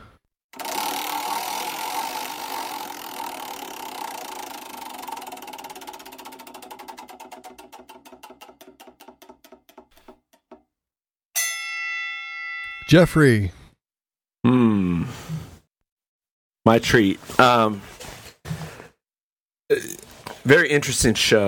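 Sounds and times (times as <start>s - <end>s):
prize wheel spinning and clicking: 0.6s - 10.5s
speech: 12.9s - 13.6s, 16.7s - 17.9s, 20.5s - 21.4s.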